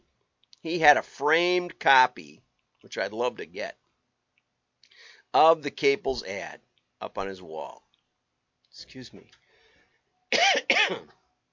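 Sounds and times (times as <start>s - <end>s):
speech: 0.6s - 3.8s, 5.3s - 7.8s, 8.8s - 9.4s, 10.3s - 11.2s
harsh raspy coughs: 10.3s - 11.2s.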